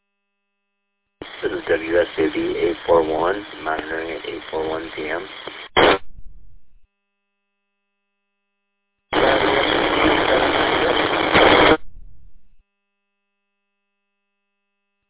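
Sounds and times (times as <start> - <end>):
harsh radio static: 1.2 - 6.8, 9.1 - 12.6
speech: 1.4 - 5.9.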